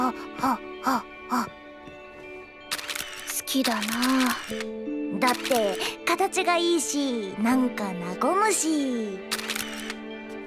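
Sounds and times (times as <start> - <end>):
speech: 0.1 - 1.6, 3.5 - 9.4
camera shutter clicks as photos are taken: 2.7 - 4.7, 5.3 - 5.8, 9.3 - 10.0.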